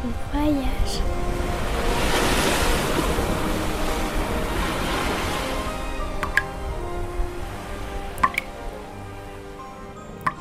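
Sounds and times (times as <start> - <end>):
speech: 0.0 - 1.4
ocean surf washing in: 0.4 - 8.4
bright water drips plinking: 6.2 - 6.6, 8.1 - 8.6, 10.2 - 10.3.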